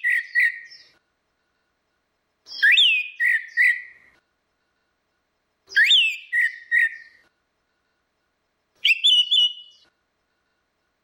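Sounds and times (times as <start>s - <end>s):
Orange-headed thrush whistling song: 0.0s - 1.0s, 2.5s - 4.2s, 5.7s - 7.2s, 8.8s - 9.9s.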